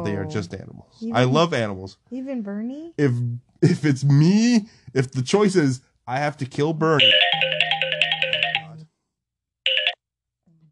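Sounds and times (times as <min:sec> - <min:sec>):
speech: 0:00.0 - 0:07.6
phone ringtone with pulsing electronic melody: 0:07.0 - 0:08.8, 0:09.7 - 0:10.1.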